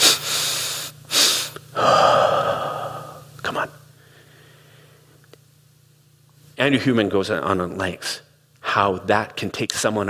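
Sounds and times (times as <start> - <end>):
person breathing in a physiological sigh exercise: 0.0 - 3.3, 4.0 - 5.2
speech: 6.6 - 10.0.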